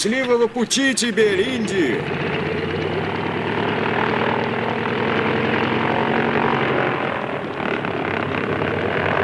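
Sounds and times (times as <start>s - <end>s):
speech: 0.0s - 2.4s
propeller airplane engine droning during takeoff run: 0.0s - 9.2s.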